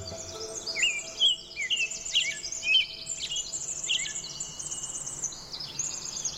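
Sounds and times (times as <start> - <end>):
varied thrush singing in spring: 0.0 - 4.6.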